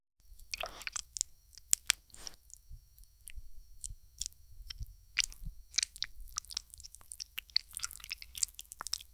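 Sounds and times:
ASMR liquid squishing: 0:00.2 - 0:09.1.

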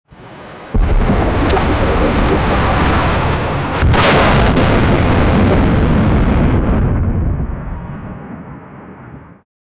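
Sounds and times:
submerged ship sinking: 0:00.7 - 0:06.8.

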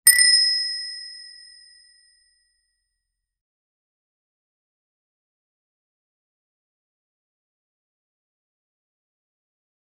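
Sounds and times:
game UI coin donation sound: 0:00.1 - 0:01.6.

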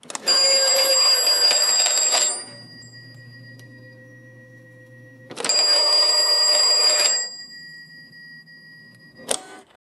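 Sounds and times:
old fashioned cash register in retail: 0:00.0 - 0:04.5, 0:05.2 - 0:09.8.

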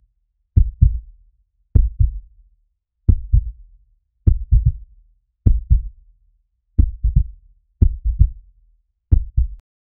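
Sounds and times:
loud cinematic heartbeat: 0:00.6 - 0:01.1, 0:01.8 - 0:02.2, 0:03.1 - 0:03.6, 0:04.3 - 0:04.8, 0:05.5 - 0:05.9, 0:06.8 - 0:08.4, 0:09.1 - 0:09.6.

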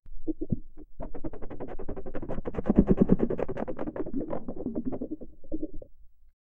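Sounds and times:
many soft tentacles wriggling: 0:01.0 - 0:05.9.

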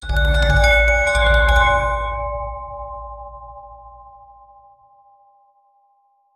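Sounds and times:
epic scary bell ringing: 0:00.0 - 0:04.7.

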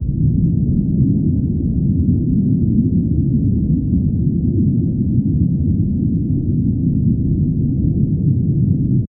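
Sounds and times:
deep underwater ambience: 0:00.0 - 0:09.1.

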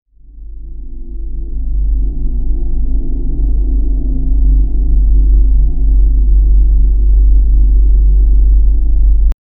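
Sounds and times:
zen-like ambient hum: 0:00.1 - 0:09.4.

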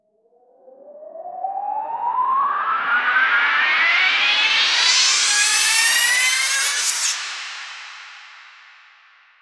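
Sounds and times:
euphoric commercial riser: 0:02.5 - 0:08.7.

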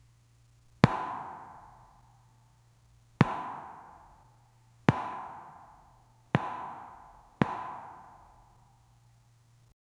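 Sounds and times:
clean pop of a tennis ball: 0:00.8 - 0:02.4, 0:03.2 - 0:08.7.

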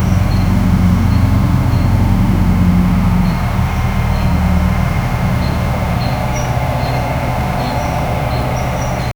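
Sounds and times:
chirping: 0:00.0 - 0:09.1
soft tractor engine rumble: 0:00.0 - 0:09.1.

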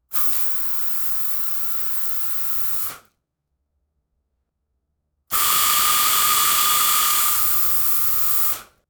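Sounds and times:
multiple jets of milk spraying: 0:05.3 - 0:08.7.

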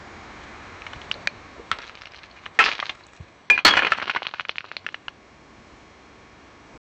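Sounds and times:
heavy building crashing: 0:01.7 - 0:04.9.

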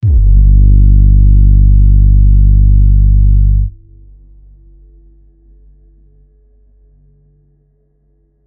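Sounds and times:
deep dark drum and bass music: 0:00.0 - 0:03.9.

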